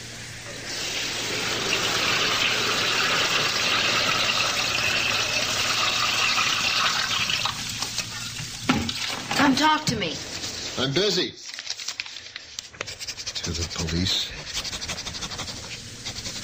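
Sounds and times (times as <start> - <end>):
hot water filling a bathtub: 0.0 - 9.5
speech: 9.6 - 11.4, 13.5 - 14.4.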